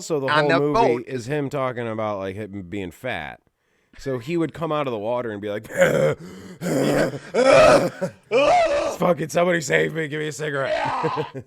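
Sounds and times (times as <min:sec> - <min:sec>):
speech: 0:00.0 - 0:11.4
short grunt: 0:05.7 - 0:09.0
voice imitating rough hacking coughs: 0:05.7 - 0:09.0.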